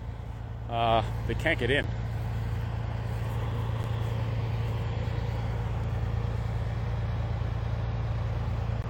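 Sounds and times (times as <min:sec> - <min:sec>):
heavy truck in a convoy rumbling: 0:00.0 - 0:08.8
speech: 0:00.7 - 0:02.0.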